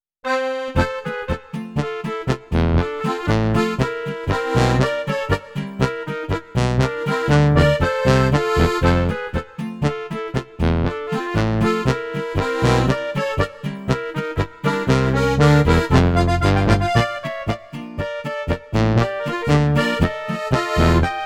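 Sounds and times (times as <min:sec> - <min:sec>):
sound module baritone: 0:00.8 - 0:21.2.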